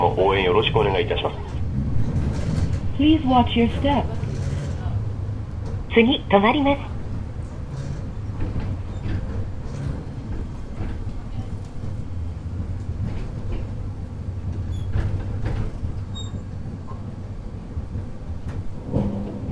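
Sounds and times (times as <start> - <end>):
speech: 0.0 - 1.7, 3.0 - 4.3, 6.0 - 6.9
streetcar wheels and motor rumbling: 0.0 - 19.4
streetcar clanks and rattles: 1.0 - 5.9, 6.9 - 19.4.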